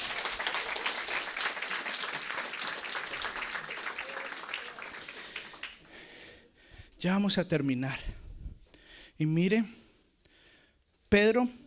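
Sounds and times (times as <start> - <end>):
crowd applauding: 0.0 - 6.1
speech: 7.0 - 8.2, 9.2 - 9.8, 11.1 - 11.6.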